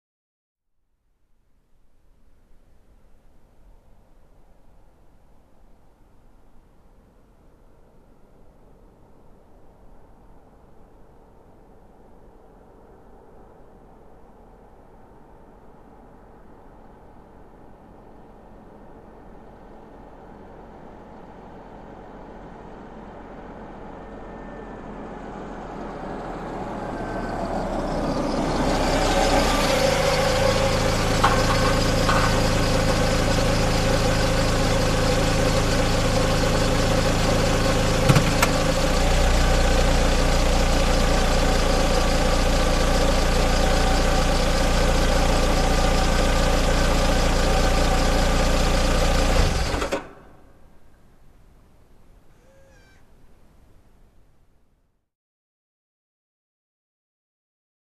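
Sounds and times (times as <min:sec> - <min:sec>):
car engine shutting off while parking: 0:18.5 - 0:50.7.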